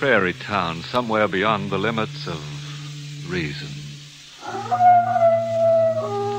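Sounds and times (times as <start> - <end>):
speech: 0.0 - 2.6, 3.2 - 3.8
low humming drone: 0.0 - 6.3
coyotes howling at night: 4.4 - 6.3.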